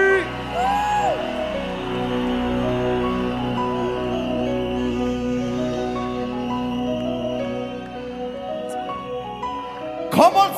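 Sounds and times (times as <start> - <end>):
high whoops and shouts from a crowd: 0.0 - 4.1
large crowd cheering loudly: 0.0 - 10.5.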